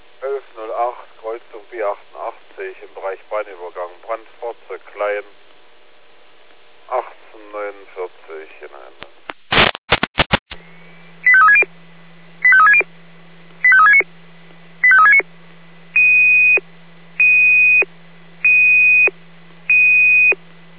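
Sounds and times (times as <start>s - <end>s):
burst of fire brigade radio clicks: 9.3s - 10.6s
fire brigade radio warbling alarm tones: 11.2s - 11.7s, 12.4s - 12.9s, 13.6s - 14.1s, 14.8s - 15.3s, 16.0s - 16.6s, 17.2s - 19.1s, 19.7s - 20.4s.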